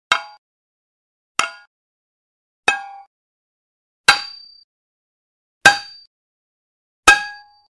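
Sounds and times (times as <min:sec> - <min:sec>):
dull metal impact with light ring out: 0:00.1 - 0:00.4, 0:01.4 - 0:01.7, 0:02.7 - 0:03.1, 0:04.1 - 0:04.6, 0:05.6 - 0:06.1, 0:07.0 - 0:07.6.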